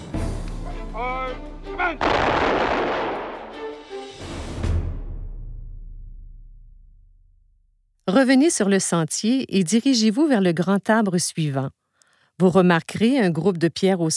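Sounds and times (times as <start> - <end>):
speech: 1.0 - 3.3, 8.1 - 11.8, 12.4 - 14.1
gunfire volleys fired over a grave at a military funeral: 2.0 - 3.9.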